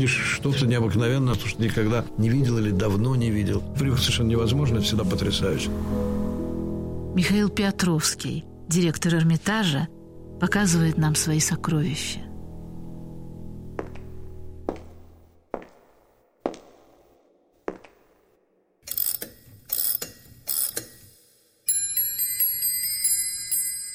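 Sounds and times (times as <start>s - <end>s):
speech: 0.0s - 6.2s, 7.2s - 12.3s
clock mechanism clicking and ticking: 18.8s - 21.1s
bright bell-like clock chiming: 21.7s - 23.9s.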